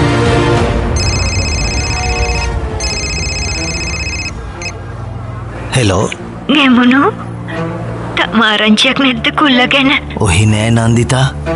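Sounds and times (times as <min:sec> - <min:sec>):
constant broadband noise in town: 0:00.8 - 0:10.2
phone ringing: 0:01.0 - 0:04.8
speech: 0:05.8 - 0:07.3, 0:08.3 - 0:11.5.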